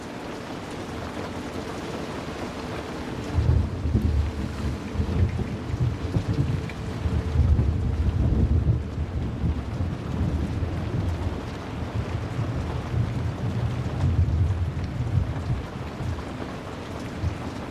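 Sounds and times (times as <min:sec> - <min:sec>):
heavy rain lashing against window panes in a thunderstorm: 0:00.0 - 0:17.7
wind blowing in a thunderstorm: 0:02.0 - 0:15.5
low rumbling in a thunderstorm: 0:03.2 - 0:15.6.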